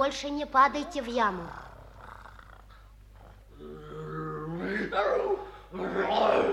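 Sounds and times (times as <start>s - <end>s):
speech: 0.0s - 1.6s, 4.7s - 6.5s
tiger cubs purring: 0.7s - 5.2s.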